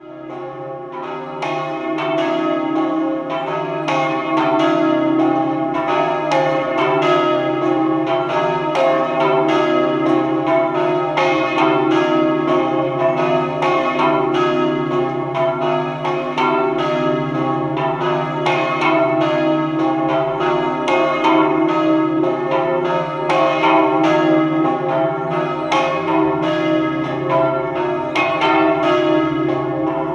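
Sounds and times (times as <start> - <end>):
church bells ringing in Caneva: 0.0 - 30.1.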